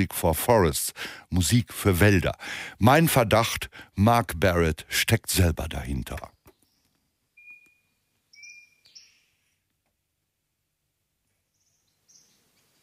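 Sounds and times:
speech: 0:00.0 - 0:06.4
birds chirping and whistling in short thin high notes: 0:06.5 - 0:09.4, 0:11.5 - 0:12.8.

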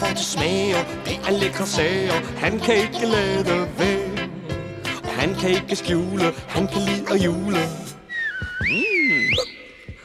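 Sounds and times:
speech: 0:00.2 - 0:03.9, 0:05.2 - 0:07.9
cartoon character whistling a tune in a children's Christmas song: 0:06.8 - 0:10.0.

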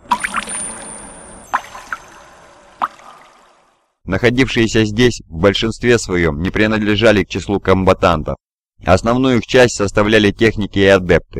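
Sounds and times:
blood dripping through metal floor grating: 0:00.0 - 0:03.8
speech: 0:04.1 - 0:11.3.

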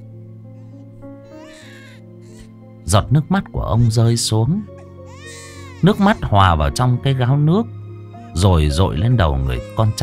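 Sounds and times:
abandoned baby crying: 0:00.6 - 0:02.5, 0:04.7 - 0:06.4, 0:08.9 - 0:10.0
speech: 0:02.9 - 0:04.8, 0:05.8 - 0:07.8, 0:08.4 - 0:10.0.

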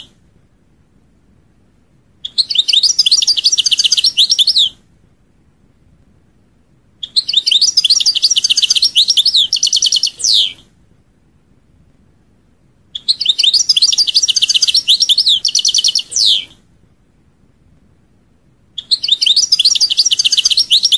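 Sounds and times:
European goldfinch song: 0:02.2 - 0:04.8, 0:07.0 - 0:10.7, 0:12.9 - 0:16.6, 0:18.8 - 0:20.9.

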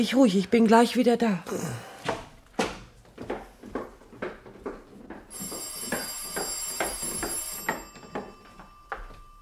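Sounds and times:
speech: 0:00.0 - 0:01.9
telephone ringing: 0:05.2 - 0:09.4
bright steady tone: 0:05.5 - 0:09.4.

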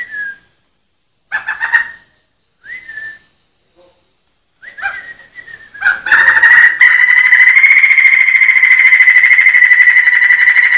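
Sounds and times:
Sumatran laughingthrush song in the rolling ngerol style: 0:05.8 - 0:10.7.

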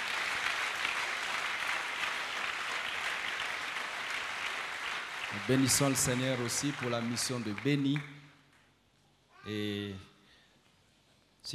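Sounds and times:
church congregation applauding during a service: 0:00.0 - 0:08.6
speech: 0:05.3 - 0:08.2, 0:09.5 - 0:10.1.

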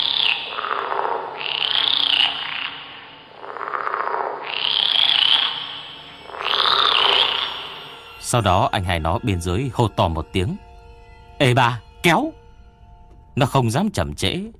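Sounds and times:
frogs croaking in rasping creaking bouts: 0:00.0 - 0:14.3
speech: 0:08.3 - 0:10.6, 0:11.4 - 0:12.4, 0:13.4 - 0:14.5.

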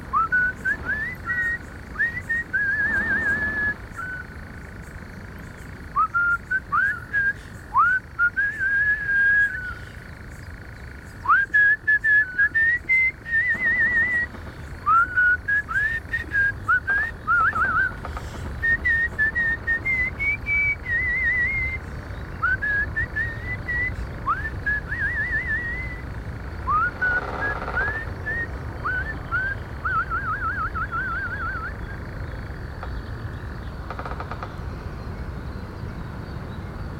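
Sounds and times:
man whistling a Schlager pop melody at a dark forest edge: 0:00.1 - 0:04.3, 0:06.0 - 0:09.8, 0:11.2 - 0:14.3, 0:14.9 - 0:18.0, 0:18.6 - 0:21.8, 0:22.4 - 0:26.1, 0:26.7 - 0:31.9.

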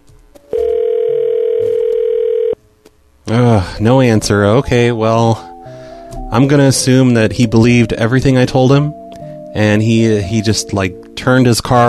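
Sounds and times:
telephone dial tone after a call hangs up: 0:00.5 - 0:02.6
speech: 0:03.3 - 0:05.5, 0:06.3 - 0:11.8.

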